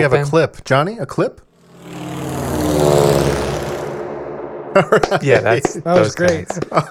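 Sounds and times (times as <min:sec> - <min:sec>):
speech: 0:00.0 - 0:02.1, 0:04.8 - 0:06.8
biplane propeller engine flying past: 0:01.5 - 0:05.8
laughter: 0:04.8 - 0:06.8.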